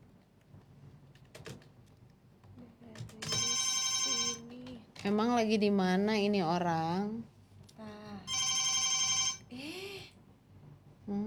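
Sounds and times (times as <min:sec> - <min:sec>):
telephone ringing on an outgoing call: 0:03.2 - 0:04.5, 0:08.3 - 0:09.5
speech: 0:05.0 - 0:07.3.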